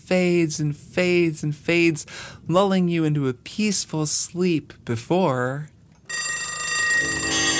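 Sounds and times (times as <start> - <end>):
speech: 0.1 - 5.8
many alarm clocks with metallic bells ringing: 6.1 - 7.5.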